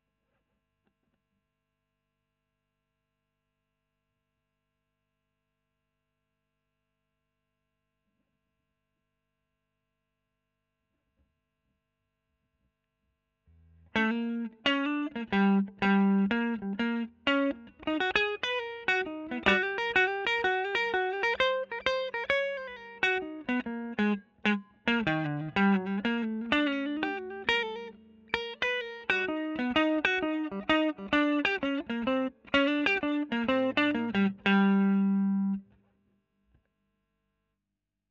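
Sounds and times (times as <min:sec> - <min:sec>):
electric guitar solo: 0:13.9 - 0:35.7.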